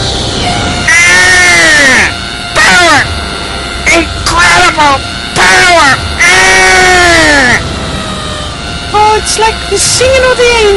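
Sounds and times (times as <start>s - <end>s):
hissing noise: 0.0s - 10.7s
shrill sonic scream: 0.4s - 10.7s
speech: 9.2s - 10.7s.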